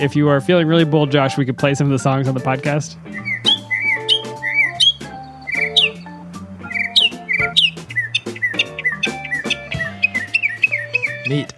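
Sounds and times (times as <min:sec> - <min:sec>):
speech: 0:00.0 - 0:03.5, 0:11.3 - 0:11.5
northern mockingbird singing a medley imitating other birds: 0:03.0 - 0:11.5.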